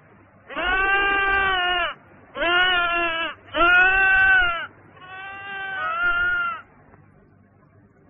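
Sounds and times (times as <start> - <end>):
sheep bleating: 0.5 - 6.7.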